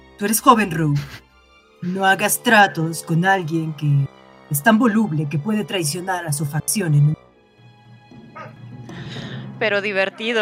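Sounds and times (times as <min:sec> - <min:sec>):
speech: 0:00.2 - 0:07.2, 0:09.6 - 0:10.4
dogs barking in the distance: 0:08.2 - 0:08.7.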